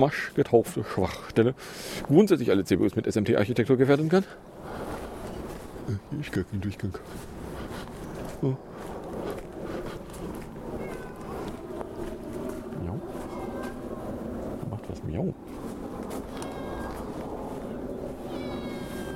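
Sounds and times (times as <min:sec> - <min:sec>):
speech: 0:00.0 - 0:04.8, 0:05.9 - 0:07.3, 0:08.4 - 0:09.3
noisy hum: 0:00.0 - 0:19.1
cat meowing: 0:10.8 - 0:11.6, 0:13.2 - 0:13.8, 0:16.3 - 0:17.1, 0:18.3 - 0:19.1.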